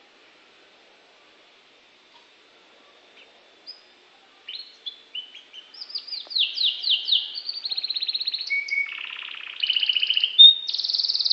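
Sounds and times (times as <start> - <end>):
Norwich canary song: 3.2 - 11.3.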